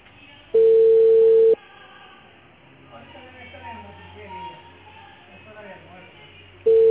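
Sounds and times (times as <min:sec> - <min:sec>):
telephone ringback tone while calling an area supervisor: 0:00.6 - 0:01.6, 0:06.7 - 0:06.8.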